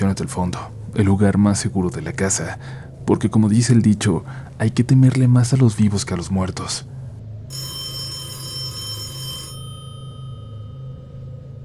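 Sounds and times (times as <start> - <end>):
speech: 0.0 - 7.6
steady low hum: 0.0 - 11.6
old landline phone's mechanical bell ringing: 7.5 - 11.3.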